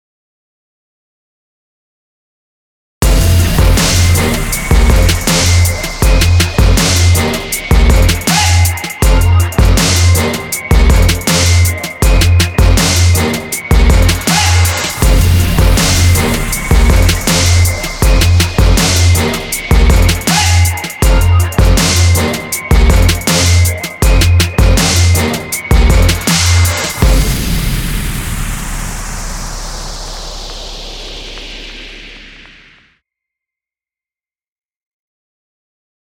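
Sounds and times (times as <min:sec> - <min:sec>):
trap beat: 0:03.0 - 0:27.5.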